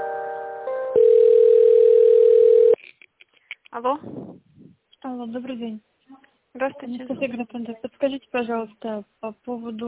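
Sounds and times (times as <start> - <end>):
telephone line tones while a call is being connected: 0.9 - 2.8
speech: 3.8 - 4.2, 5.2 - 5.9, 6.6 - 9.8.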